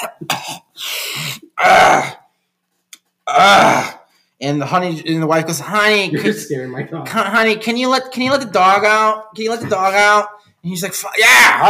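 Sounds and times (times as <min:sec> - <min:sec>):
voice imitating a weary man's coughing and throat-clearing: 0:00.0 - 0:02.2
speech: 0:04.5 - 0:11.6.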